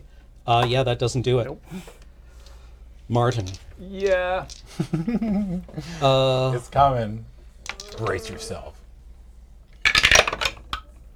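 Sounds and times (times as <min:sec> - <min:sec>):
speech: 0:00.5 - 0:02.0, 0:03.1 - 0:07.3, 0:08.0 - 0:08.8
many dice rolled across a table during a tabletop game: 0:03.3 - 0:05.2, 0:07.6 - 0:08.7, 0:09.8 - 0:10.8
laughter: 0:03.8 - 0:08.8.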